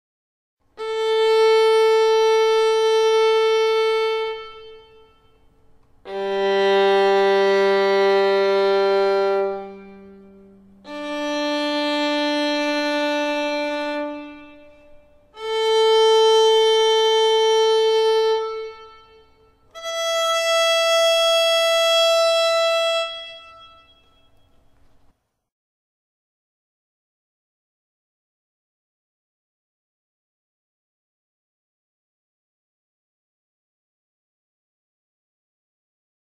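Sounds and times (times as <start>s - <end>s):
violin tuning notes: 0.8s - 24.9s.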